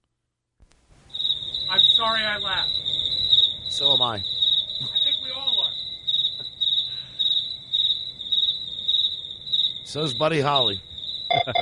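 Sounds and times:
crickets chirping: 1.1 - 11.6
speech: 1.7 - 3.1, 3.7 - 5.5, 9.9 - 11.6.

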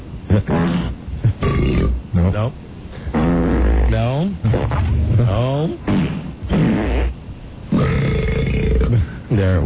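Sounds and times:
speech: 0.4 - 2.7, 3.9 - 6.2, 9.4 - 9.6
person burping: 0.5 - 2.0, 5.1 - 7.1, 7.7 - 9.1.

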